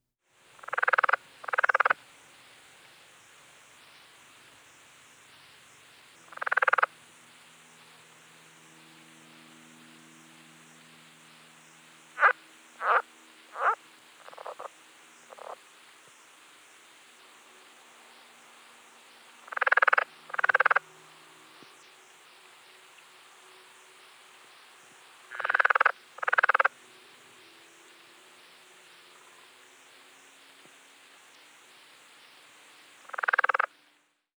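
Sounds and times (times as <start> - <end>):
Rana berlandieri calling: 0.6 - 2.1, 6.2 - 7.0, 11.6 - 16.2, 19.4 - 20.9, 25.3 - 26.8, 33.0 - 33.8.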